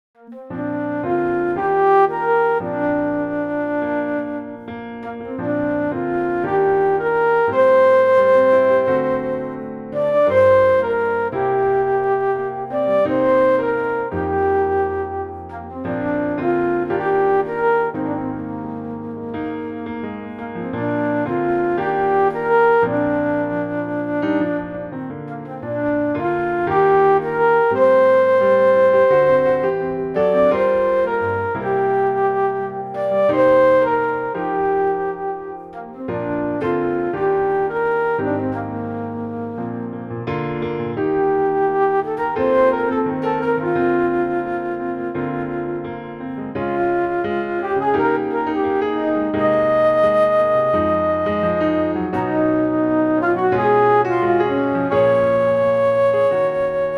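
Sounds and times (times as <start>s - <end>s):
alto flute: 0.2s - 56.9s.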